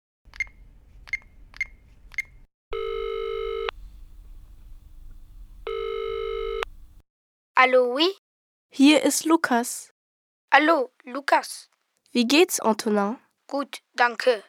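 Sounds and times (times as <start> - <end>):
long buzzing telephone ring tones for a return call: 0.4 - 7.0
short sharp telephone dialing beeps: 0.4 - 7.0
speech: 7.6 - 9.9, 10.5 - 14.4.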